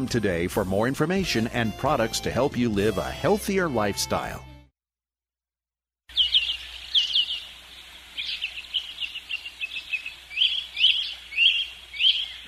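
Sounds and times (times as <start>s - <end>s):
speech: 0.0s - 4.5s
birds chirping and singing outdoors: 6.1s - 12.4s.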